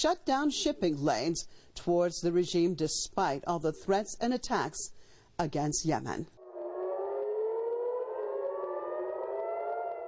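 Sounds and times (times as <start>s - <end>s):
speech: 0.0s - 6.4s
civil defense air raid siren in Tel Aviv wailing: 6.4s - 10.0s.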